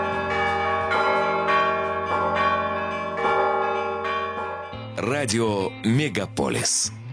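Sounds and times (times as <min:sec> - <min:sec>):
church bells with bas-reliefs ringing at a men's monastery: 0:00.0 - 0:04.8
speech: 0:05.0 - 0:07.0.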